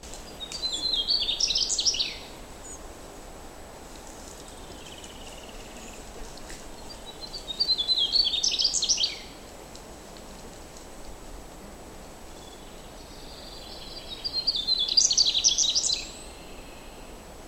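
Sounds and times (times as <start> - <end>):
M mugimaki song: 0.0 - 2.8, 4.4 - 9.4, 12.0 - 17.3.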